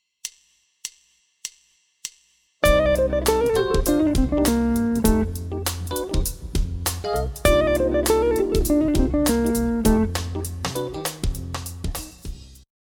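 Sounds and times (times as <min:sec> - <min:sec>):
Dorian lick: 0:02.6 - 0:12.4.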